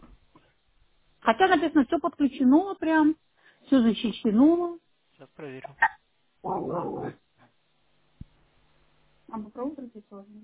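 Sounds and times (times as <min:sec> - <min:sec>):
speech: 0:01.3 - 0:07.2, 0:09.3 - 0:10.4
dog growling: 0:05.7 - 0:07.2.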